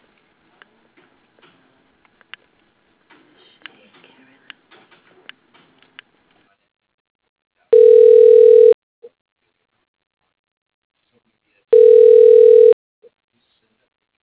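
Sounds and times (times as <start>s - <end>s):
telephone line tone while a call is transferred to voicemail: 7.7s - 8.8s, 11.7s - 12.8s.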